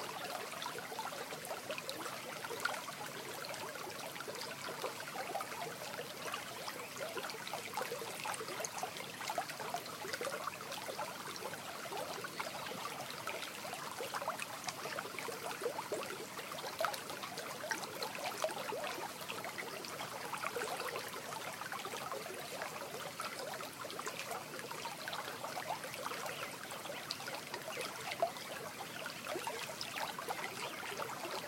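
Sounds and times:
morning stream trickling and splashing: 0.0 - 31.4.

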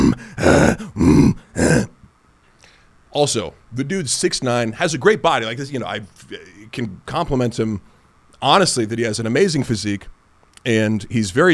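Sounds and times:
man imitating grunting and growling of someone straining through muscle-ups: 0.0 - 2.1
speech: 3.2 - 11.5.

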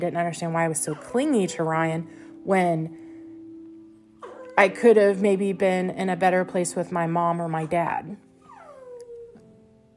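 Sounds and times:
speech: 0.0 - 3.0, 4.6 - 8.2
dog whimpering whine: 0.8 - 1.8, 4.2 - 4.7, 8.4 - 9.5
dog howling: 4.2 - 4.7, 8.4 - 9.4.

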